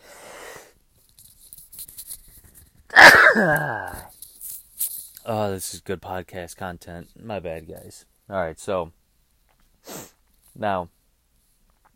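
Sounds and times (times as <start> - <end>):
quiet rustling: 0.9 - 2.9, 4.0 - 11.9
person sneezing with a wheezy vocal tail: 2.9 - 4.1
soft breathy noises: 3.0 - 4.1
speech: 3.4 - 4.0, 5.3 - 9.0, 10.6 - 11.0.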